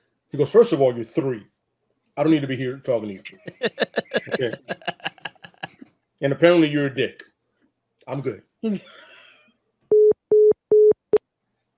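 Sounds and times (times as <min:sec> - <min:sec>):
speech: 0:00.3 - 0:01.6, 0:02.2 - 0:04.9, 0:06.2 - 0:07.3, 0:08.1 - 0:09.0
laughter: 0:03.2 - 0:05.8
phone call disconnect tone after hang-up: 0:09.9 - 0:11.0.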